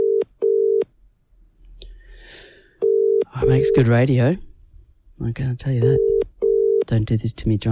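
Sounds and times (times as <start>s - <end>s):
telephone ringing tones over the line: 0.0s - 0.8s, 2.8s - 3.9s, 5.8s - 6.9s
speech: 3.4s - 4.5s, 5.2s - 6.1s, 6.9s - 7.7s.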